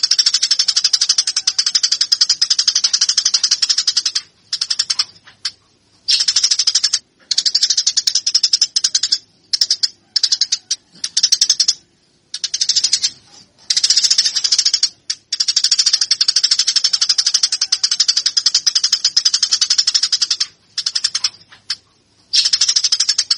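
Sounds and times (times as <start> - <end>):
Eurasian tree sparrow fighting call chattering: 0.0 - 23.3.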